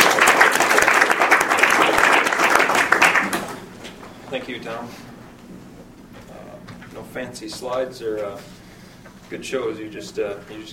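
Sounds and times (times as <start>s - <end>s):
audience applauding: 0.0s - 3.6s
speech: 4.5s - 5.0s, 7.2s - 8.6s, 9.3s - 10.7s.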